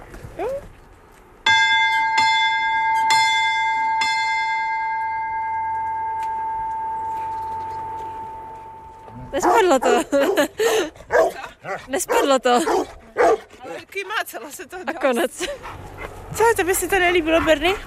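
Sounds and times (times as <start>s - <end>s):
large bell ringing: 1.5s - 10.0s
speech: 9.7s - 12.9s, 14.0s - 17.8s.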